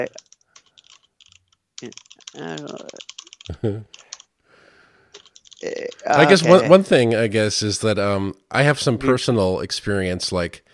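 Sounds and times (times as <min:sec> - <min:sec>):
speech: 0:00.0 - 0:00.3, 0:01.8 - 0:04.0, 0:05.6 - 0:10.7
computer keyboard typing: 0:00.0 - 0:04.3, 0:05.1 - 0:06.1.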